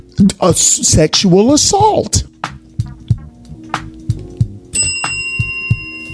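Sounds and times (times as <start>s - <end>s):
speech: 0.2s - 2.3s
bell ringing: 4.7s - 6.1s.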